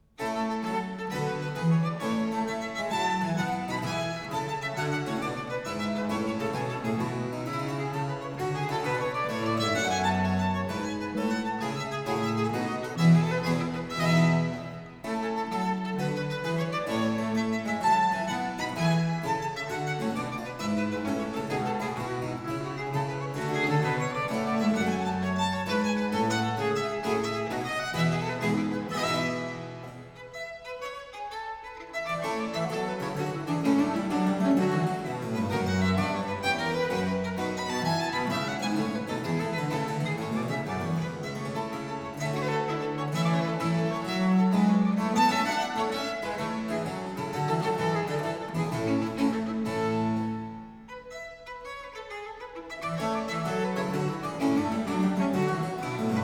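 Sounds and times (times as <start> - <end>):
violin: 0.0 - 56.2.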